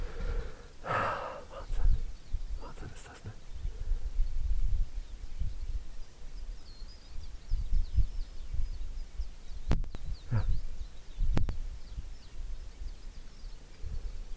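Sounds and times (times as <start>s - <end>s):
low wind rumble: 0.0s - 14.3s
wild canaries twittering in large pine trees: 0.0s - 14.3s
person murmuring: 0.8s - 2.0s, 2.6s - 3.4s, 10.3s - 10.6s.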